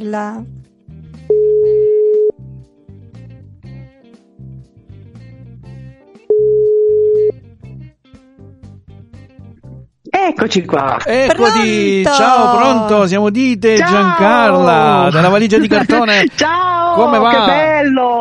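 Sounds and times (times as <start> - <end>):
speech: 0.0 - 0.6, 10.3 - 18.2
music: 0.0 - 18.2
ringback tone of an outgoing telephone call: 1.3 - 2.3, 6.3 - 7.4
laughter: 11.0 - 13.1, 13.8 - 17.7.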